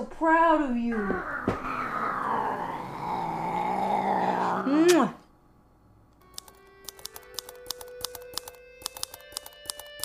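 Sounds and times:
speech: 0.1s - 1.7s
cat wearing a body microphone growling: 0.9s - 4.9s.

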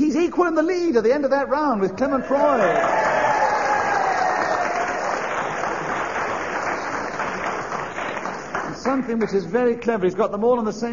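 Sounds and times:
speech: 0.2s - 3.2s, 8.8s - 10.9s
studio audience with a fan club applauding: 2.3s - 9.5s.

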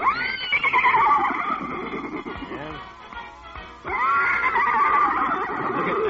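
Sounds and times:
horse neighing as it races across parade grounds: 0.0s - 2.5s, 3.9s - 6.0s.

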